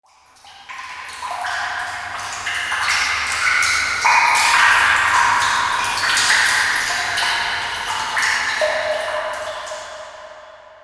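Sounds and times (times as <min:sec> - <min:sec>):
water dripping in a dungeon: 0:00.1 - 0:10.8.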